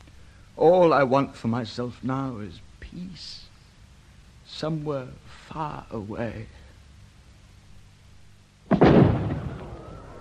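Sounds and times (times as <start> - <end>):
speech: 0.6 - 3.5, 4.5 - 6.6
booming firework burst with crackling rumbling tail in the evening: 8.7 - 10.1.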